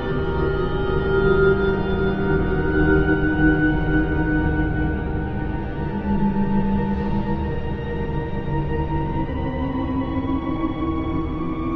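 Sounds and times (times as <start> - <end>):
eerie haunted orchestral music: 0.1 - 11.7.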